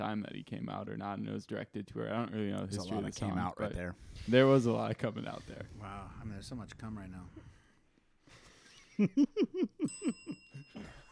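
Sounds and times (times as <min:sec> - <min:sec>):
speech: 0:00.0 - 0:07.6, 0:09.0 - 0:11.0
small hand bell ringing: 0:09.8 - 0:11.1.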